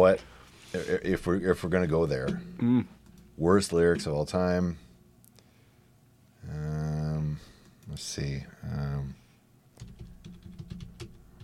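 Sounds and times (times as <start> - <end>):
speech: 0.0 - 4.9, 7.9 - 9.2
typing on a computer keyboard: 9.8 - 11.4.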